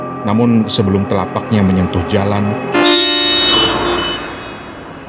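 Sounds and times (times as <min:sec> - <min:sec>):
speech: 0:00.2 - 0:02.9
several car horns honking at someone stepping onto the road: 0:02.7 - 0:05.0.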